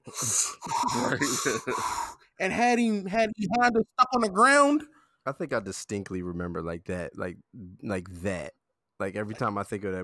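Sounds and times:
voice imitating heavy wheezing breathing: 0:00.0 - 0:02.2
speech: 0:00.1 - 0:10.0.

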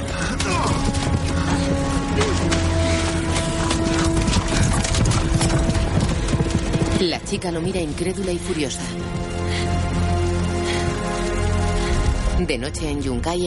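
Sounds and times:
horse galloping away with rapid hoofbeats: 0:00.0 - 0:12.3
speech: 0:07.0 - 0:09.7, 0:12.4 - 0:13.4.

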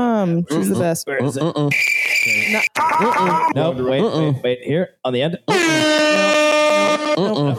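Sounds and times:
speech: 0:00.0 - 0:06.2, 0:07.2 - 0:07.5
air horn blasts with pitch-bending honks: 0:05.5 - 0:07.2.

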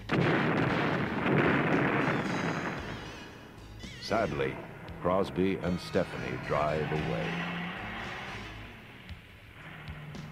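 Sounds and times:
heavy gunfire from troops: 0:00.0 - 0:03.7
explosive blasts blowing a robot to pieces: 0:00.0 - 0:09.0
speech: 0:04.1 - 0:07.6.

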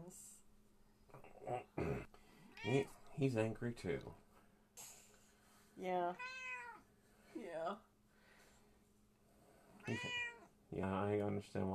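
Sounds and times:
speech: 0:00.1 - 0:00.3, 0:02.6 - 0:04.2, 0:05.8 - 0:06.4, 0:07.4 - 0:07.9, 0:09.8 - 0:11.7
cat meowing: 0:02.6 - 0:02.9, 0:06.2 - 0:06.8, 0:09.8 - 0:10.5.

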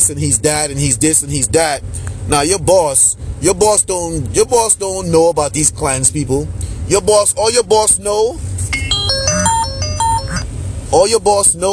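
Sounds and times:
speech: 0:00.1 - 0:08.5, 0:10.9 - 0:11.7
low hum: 0:08.6 - 0:10.8
electronic alarm beeping melodic notes: 0:08.7 - 0:10.5.

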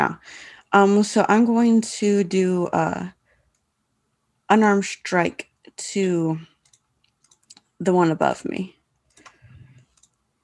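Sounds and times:
speech: 0:00.0 - 0:03.2, 0:04.5 - 0:06.5, 0:07.8 - 0:08.8
computer mouse clicks selecting a target on screen: 0:06.6 - 0:07.7, 0:09.0 - 0:10.2.

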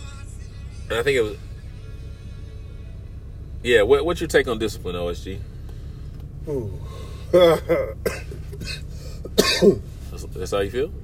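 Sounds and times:
speech: 0:00.9 - 0:01.5, 0:03.6 - 0:05.5, 0:06.4 - 0:08.8, 0:09.4 - 0:11.0
throaty vocal sounds: 0:06.4 - 0:09.8
person coughing in a harsh fit: 0:07.3 - 0:09.9.

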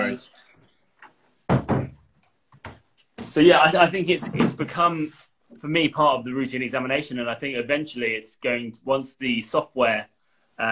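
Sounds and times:
speech: 0:00.1 - 0:00.4, 0:03.3 - 0:10.7
door pushed shut with a heavy thud: 0:01.5 - 0:02.0.

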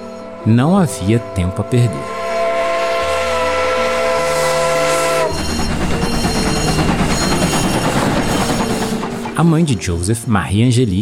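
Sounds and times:
steam train rumbling: 0:00.0 - 0:10.9
speech: 0:00.4 - 0:02.2, 0:09.4 - 0:10.9
steam train whistle bound for Paris, France: 0:01.1 - 0:09.0.

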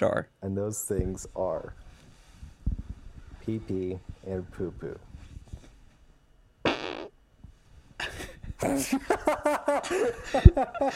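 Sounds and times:
speech: 0:00.0 - 0:01.8, 0:03.4 - 0:05.1, 0:08.6 - 0:10.9
loud fart into the microphone: 0:06.6 - 0:07.2
people laughing: 0:08.0 - 0:10.9.

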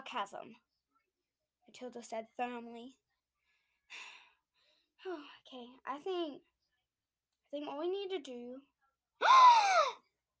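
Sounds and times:
speech: 0:00.1 - 0:00.7, 0:01.7 - 0:03.0, 0:03.9 - 0:04.2, 0:05.0 - 0:06.5, 0:07.5 - 0:10.0
sharp voiced gasp: 0:09.2 - 0:10.0.

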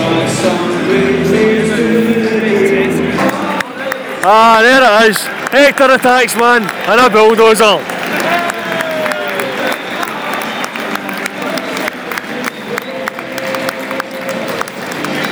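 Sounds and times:
scattered voices from within a stadium crowd: 0:00.0 - 0:15.2
large stadium crowd clapping: 0:03.2 - 0:15.2
speech: 0:04.2 - 0:08.4
whistles rising from within a stadium crowd: 0:08.2 - 0:15.2.

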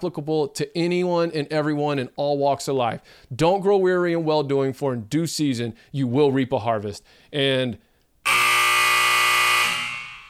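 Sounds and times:
speech: 0:00.0 - 0:08.6
harsh electronic buzzer marking the end of time: 0:08.2 - 0:10.2.

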